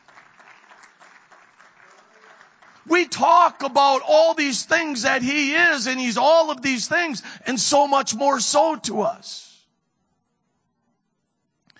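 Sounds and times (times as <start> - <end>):
congregation clapping hands in praise during a church service: 0.0 - 5.9
speech: 2.8 - 9.5.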